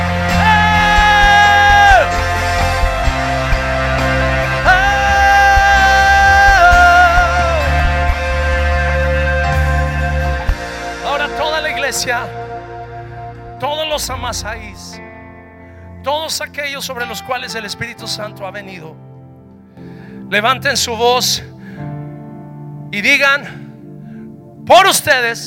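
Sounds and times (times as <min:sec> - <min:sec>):
higher excited yelling: 0:00.0 - 0:08.5
audience shouting and cheering: 0:00.0 - 0:10.5
sustained musical tones: 0:00.0 - 0:16.0
speech: 0:14.0 - 0:15.0, 0:16.1 - 0:19.1, 0:19.8 - 0:21.5, 0:22.9 - 0:23.6, 0:24.6 - 0:25.4.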